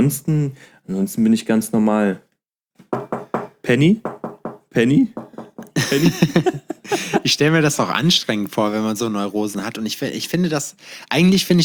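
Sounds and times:
speech: 0.0s - 3.0s, 3.7s - 5.2s, 5.9s - 11.6s
person imitating knocking with voice: 3.0s - 5.8s
laughter: 5.6s - 7.5s.

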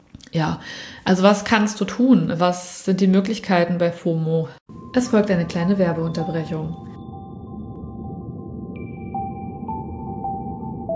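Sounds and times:
speech: 0.3s - 6.9s
gentle chime-like notes: 4.7s - 10.9s
long sustained high tones: 4.7s - 10.9s
soft steady low drone: 4.7s - 10.9s.

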